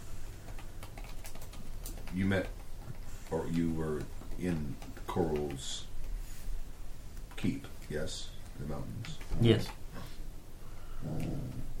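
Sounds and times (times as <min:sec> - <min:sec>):
speech: 0:02.1 - 0:02.6, 0:03.3 - 0:05.9, 0:07.4 - 0:09.8, 0:11.0 - 0:11.7
female dog lying on her back growling: 0:10.9 - 0:11.7.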